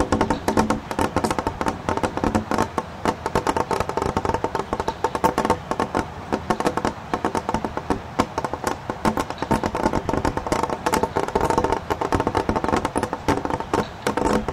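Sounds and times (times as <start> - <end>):
meltwater trickling through snow in winter thaw: 0.0 - 14.5.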